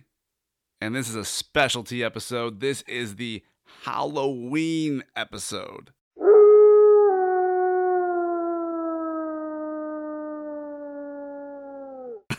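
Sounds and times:
speech: 0.8s - 6.0s
man imitating a wolf howl: 6.2s - 12.2s.

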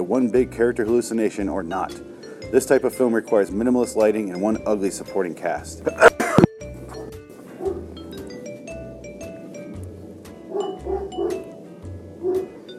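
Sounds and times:
speech: 0.0s - 6.1s
dog barking: 6.9s - 7.9s, 10.5s - 11.5s, 12.2s - 12.6s.

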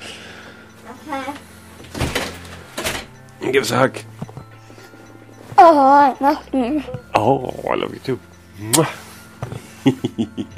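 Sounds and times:
speech: 0.9s - 2.0s, 3.4s - 4.2s, 5.6s - 9.0s, 9.8s - 10.5s
door pushed shut with a thud: 1.8s - 3.2s.

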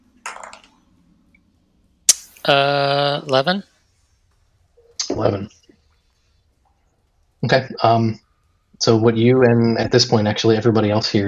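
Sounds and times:
dice clattering across a table: 0.2s - 0.8s
sharp click: 2.1s - 2.5s
speech: 2.5s - 3.7s, 5.2s - 5.6s, 7.4s - 8.2s, 8.8s - 11.2s.

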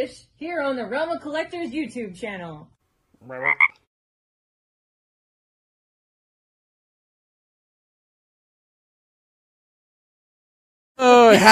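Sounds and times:
speech: 0.0s - 3.8s, 11.0s - 11.5s
frog croaking: 3.2s - 3.9s.

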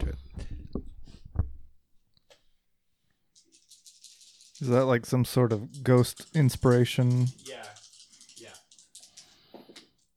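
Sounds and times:
die rolling and tumbling to a stop: 3.4s - 10.1s
speech: 4.6s - 7.7s.

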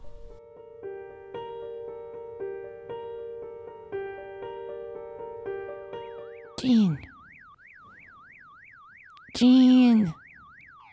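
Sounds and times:
car alarm wailing: 5.2s - 10.9s
speech: 6.6s - 7.1s, 9.4s - 10.2s.

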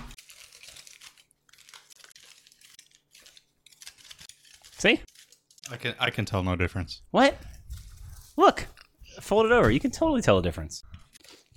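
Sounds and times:
small piece of aluminum foil crinkled and ripped off a 75-square-foot roll: 0.0s - 6.2s, 7.4s - 8.9s, 11.0s - 11.5s
speech: 4.8s - 5.1s, 5.7s - 7.5s, 8.4s - 10.9s.

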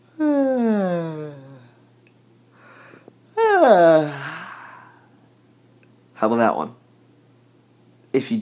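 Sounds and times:
person fake yawning into a microphone: 0.1s - 1.8s, 3.4s - 5.1s
speech: 3.7s - 4.2s, 6.2s - 6.8s, 8.2s - 8.3s.

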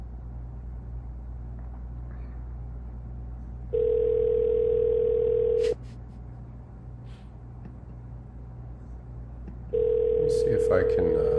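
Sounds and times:
low rumbling hum: 0.0s - 11.3s
phone line ringback tone heard through the receiver: 3.7s - 5.8s, 9.7s - 11.3s
speech: 10.7s - 11.3s.

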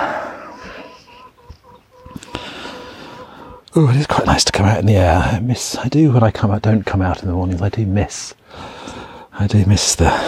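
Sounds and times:
chickens clucking and murmuring: 0.0s - 4.3s
speech: 3.7s - 8.8s, 9.4s - 10.2s.

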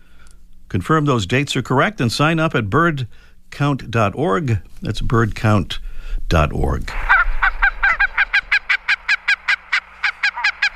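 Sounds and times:
speech: 0.7s - 7.1s
Barnacle Goose honking with short sharp yapping calls: 6.9s - 10.7s.

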